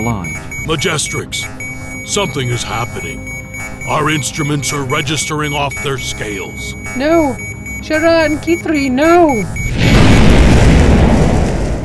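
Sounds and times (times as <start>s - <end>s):
speech: 0.0s - 9.8s
huge plasma bolt punching through starship force fields with roaring boom: 9.7s - 11.8s.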